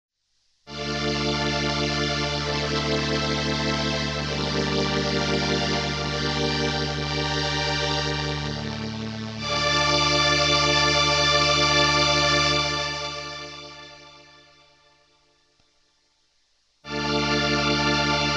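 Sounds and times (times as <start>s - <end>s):
full string ensemble with EQ: 0.7s - 13.8s, 16.9s - 18.3s.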